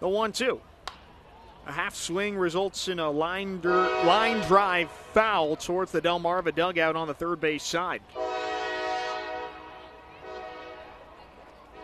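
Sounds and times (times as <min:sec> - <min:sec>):
speech: 0:00.0 - 0:00.7, 0:01.6 - 0:08.4
train horn blast: 0:03.7 - 0:04.6, 0:08.2 - 0:10.9.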